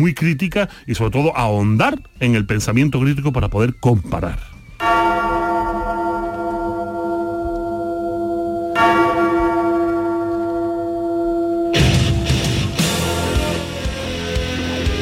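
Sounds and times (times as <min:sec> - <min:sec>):
speech: 0:00.0 - 0:04.5
deep church bell tolling: 0:04.8 - 0:13.9.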